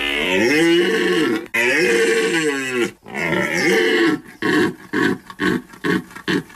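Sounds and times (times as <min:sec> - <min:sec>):
red deer stag bellowing during the rut in the Pyrenees: 0:00.0 - 0:05.2.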